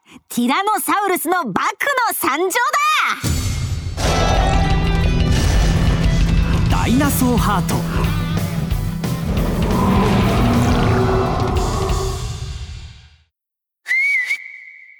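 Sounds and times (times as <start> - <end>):
speech: 0.2 - 3.4, 6.9 - 8.1
heavy rumbling crash: 3.9 - 13.1
shrill whistle echoing through a forest: 13.8 - 14.9.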